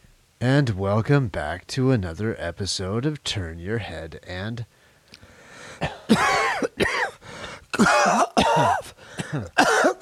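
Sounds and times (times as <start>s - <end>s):
speech: 0.4s - 4.8s, 5.8s - 7.0s, 7.8s - 9.9s
person coughing harshly with raspy throat-clearing rattle: 5.8s - 10.0s.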